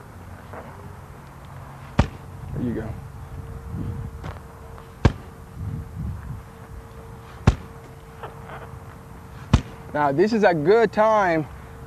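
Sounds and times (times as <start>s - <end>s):
low rumbling noise: 0.0s - 11.8s
swing striking a punching bag: 1.9s - 2.3s, 5.0s - 5.3s, 7.4s - 7.8s, 9.5s - 9.8s
speech: 2.6s - 3.1s, 10.0s - 11.6s.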